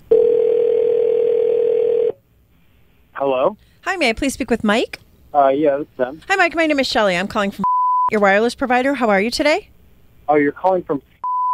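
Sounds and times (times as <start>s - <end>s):
telephone dial tone as a call is placed: 0.1s - 2.1s
speech: 3.2s - 9.7s, 10.3s - 11.1s.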